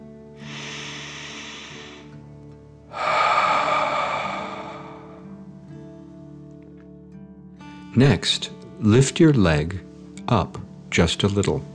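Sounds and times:
soft sustained musical drone: 0.4 - 2.1, 2.9 - 5.5
slow breathing in and out: 0.4 - 2.3, 2.9 - 5.5
speech: 8.0 - 11.7.

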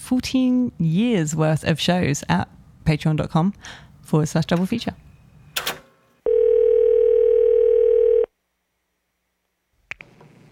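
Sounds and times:
speech: 0.1 - 5.0
telephone dial tone: 6.3 - 8.3.

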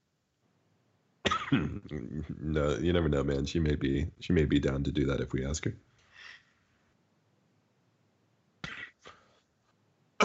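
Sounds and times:
two people coughing raspily: 1.3 - 2.0, 8.6 - 9.2
speech: 1.5 - 6.4.

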